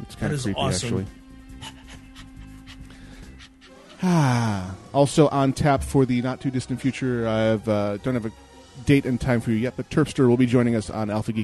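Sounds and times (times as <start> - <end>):
speech: 0.1 - 1.8, 4.0 - 11.4
dog panting behind a door: 1.6 - 4.0.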